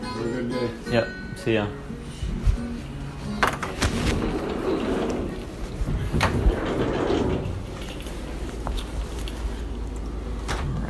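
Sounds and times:
speech: 0:00.5 - 0:01.9
shuffling and rustling as a person puts on shoes: 0:02.0 - 0:10.8
door creaking and thudding open: 0:03.4 - 0:08.5.

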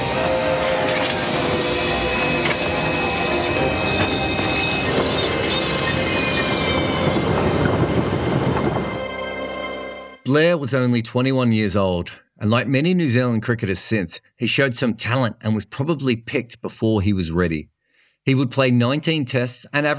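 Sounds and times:
train rumbling past: 0:00.0 - 0:10.2
speech: 0:10.4 - 0:19.9.

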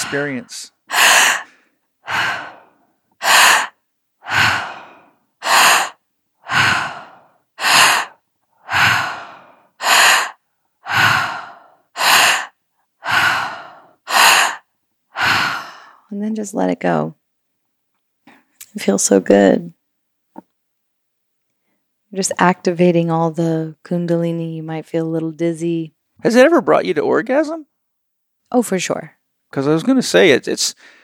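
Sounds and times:
forceful mouth breathing exercise: 0:00.0 - 0:16.1
speech: 0:00.1 - 0:00.8, 0:16.1 - 0:17.2, 0:18.8 - 0:19.8, 0:22.1 - 0:27.7, 0:28.5 - 0:31.0.

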